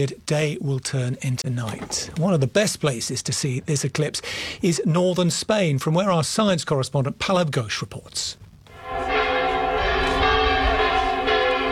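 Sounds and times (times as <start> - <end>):
speech: 0.0 - 8.4
cathedral bells of Burgos in northern Spain ringing: 8.7 - 11.6.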